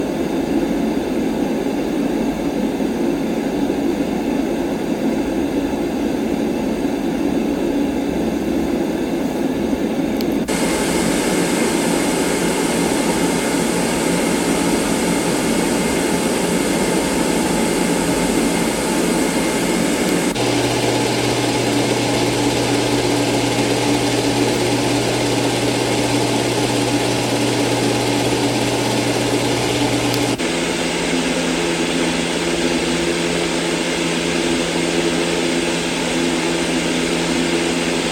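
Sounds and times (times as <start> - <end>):
fan: 0.0 - 38.0.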